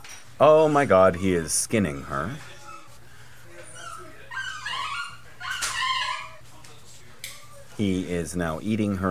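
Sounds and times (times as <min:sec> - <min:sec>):
steady low electrical hum: 0:00.0 - 0:09.0
speech: 0:00.4 - 0:02.5, 0:07.8 - 0:09.0
dog whimpering and yipping: 0:03.6 - 0:06.4.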